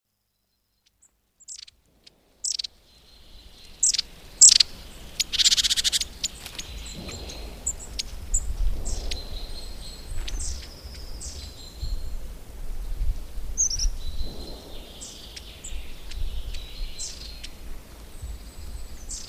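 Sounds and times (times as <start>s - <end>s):
background noise: 0.1s - 19.2s
long-tailed tit making high thin clipped calls: 3.8s - 8.4s.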